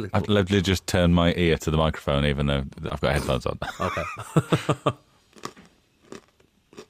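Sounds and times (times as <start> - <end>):
speech: 0.0 - 5.5
laughter: 3.2 - 5.0
hard sweet being chewed: 5.3 - 6.8.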